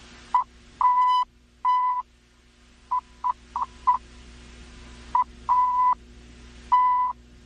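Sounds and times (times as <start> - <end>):
faint hum: 0.0 - 7.4
mid-pitched Morse code tone of dots and dashes: 0.4 - 2.0, 5.2 - 6.0, 6.7 - 7.2.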